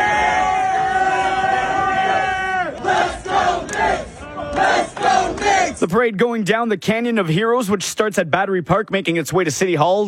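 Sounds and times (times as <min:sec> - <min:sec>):
large crowd of fans cheering and yelling along a parade route: 0:00.0 - 0:05.8
speech: 0:05.8 - 0:10.0.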